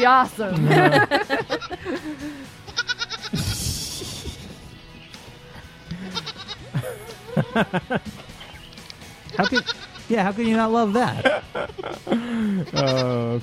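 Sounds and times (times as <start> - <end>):
speech: 0.0 - 2.6, 7.6 - 8.2, 9.4 - 13.4
laughter: 0.4 - 2.6, 3.3 - 4.8, 5.9 - 8.4, 11.0 - 13.2
little goat bleating: 2.6 - 3.6, 5.8 - 6.8, 9.3 - 10.1, 12.6 - 13.3.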